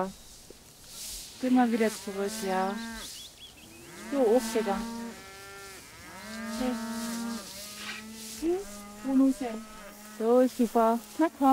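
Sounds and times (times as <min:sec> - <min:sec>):
speech: 0:00.0 - 0:00.2, 0:01.4 - 0:03.1, 0:04.1 - 0:05.0, 0:06.6 - 0:06.9, 0:08.4 - 0:11.5
domestic calf mooing on a pasture: 0:01.9 - 0:03.1, 0:03.8 - 0:11.2.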